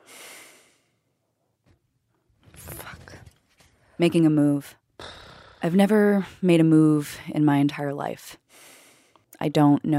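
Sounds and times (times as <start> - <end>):
man breathing while lying in bed: 0.0 - 1.1, 8.5 - 9.2
speech: 4.0 - 4.8, 5.6 - 8.7, 9.4 - 9.9.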